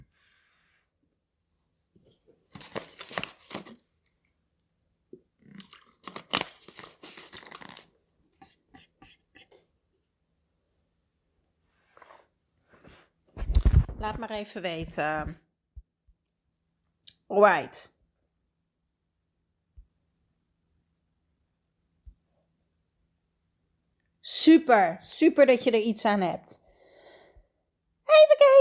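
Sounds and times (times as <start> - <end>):
person sipping water: 5.4 - 6.2
speech: 14.0 - 15.4, 17.4 - 18.0, 24.4 - 26.6.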